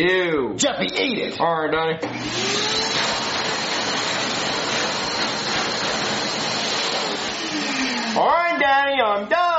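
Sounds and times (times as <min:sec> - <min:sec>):
speech: 0:00.0 - 0:03.2, 0:08.2 - 0:09.4
vacuum cleaner running: 0:02.0 - 0:08.4.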